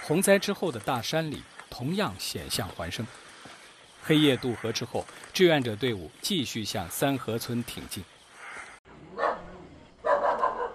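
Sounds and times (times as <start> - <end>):
speech: 0.1 - 3.2, 4.0 - 8.2
dog barking at night in a mountain village: 9.1 - 10.7.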